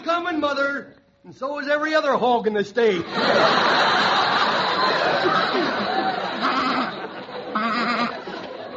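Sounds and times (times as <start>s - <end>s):
speech: 0.1s - 4.2s, 4.8s - 6.5s
laughter: 3.0s - 8.7s
sheep bleating: 6.4s - 8.2s.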